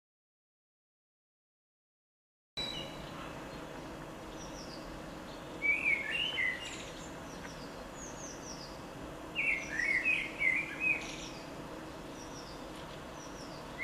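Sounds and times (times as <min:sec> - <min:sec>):
common blackbird singing: 0:02.6 - 0:03.7, 0:04.3 - 0:13.8
background hiss: 0:02.6 - 0:13.8.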